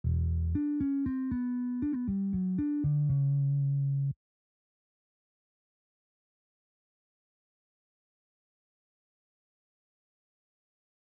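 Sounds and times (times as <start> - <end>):
distorted bass: 0.0 - 4.2.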